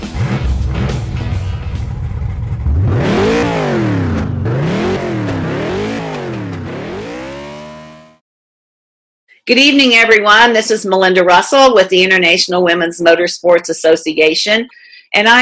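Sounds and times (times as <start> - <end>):
race car engine revving and accelerating at race start: 0.0 - 8.2
speech: 9.5 - 15.3.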